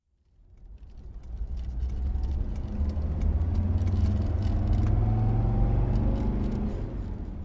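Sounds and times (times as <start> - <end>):
road rumble of fast-driving car: 0.2 - 7.4
car engine revving and accelerating: 1.6 - 7.4.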